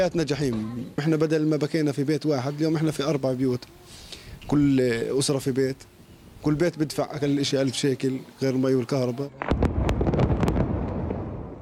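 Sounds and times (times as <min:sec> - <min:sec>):
speech: 0:00.0 - 0:09.6
sharp crackling pops: 0:09.3 - 0:11.6
explosion demolishing a residential building in a refugee camp: 0:09.4 - 0:11.6.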